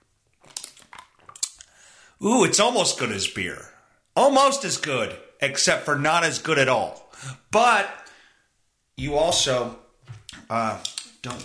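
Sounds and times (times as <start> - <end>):
person sipping water: 0.5 - 1.8
speech: 2.2 - 8.0, 9.0 - 9.8, 10.5 - 11.4.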